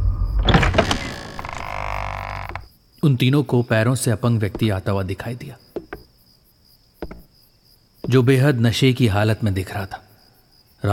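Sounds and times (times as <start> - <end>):
door hinges creaking: 0.4 - 2.7
speech: 3.0 - 5.6, 8.1 - 10.0.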